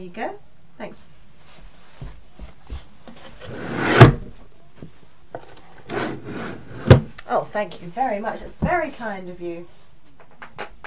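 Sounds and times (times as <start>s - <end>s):
speech: 0.0s - 2.1s, 7.5s - 9.8s
wooden drawer sliding open and shut: 3.4s - 4.3s, 5.8s - 7.1s.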